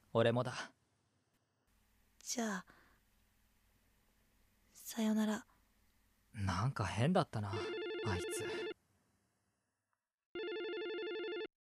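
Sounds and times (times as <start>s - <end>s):
speech: 0.1s - 0.8s, 2.3s - 2.8s, 4.9s - 5.5s, 6.4s - 8.7s
telephone ringing with rapidly warbling electronic tones: 7.5s - 8.8s, 10.4s - 11.5s.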